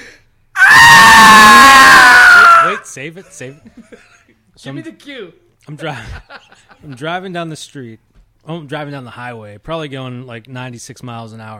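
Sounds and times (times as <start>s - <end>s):
man screaming: 0.6s - 2.9s
speech: 3.0s - 11.5s
laughter: 3.2s - 4.4s, 5.8s - 7.1s.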